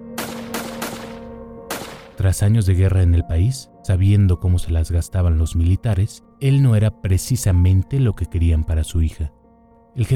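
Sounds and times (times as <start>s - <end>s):
gunshots: 0.2s - 2.2s
speech: 2.2s - 9.4s, 10.0s - 10.1s.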